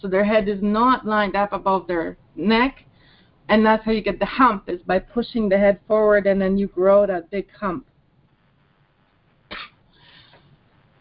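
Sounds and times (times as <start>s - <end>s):
speech: 0.0s - 2.9s, 3.5s - 7.9s
woman coughing: 9.5s - 9.8s.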